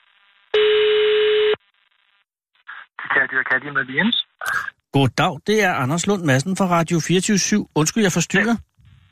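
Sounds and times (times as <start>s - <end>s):
telephone ringing tone over a phone line: 0.6s - 1.6s
speech: 3.2s - 8.7s.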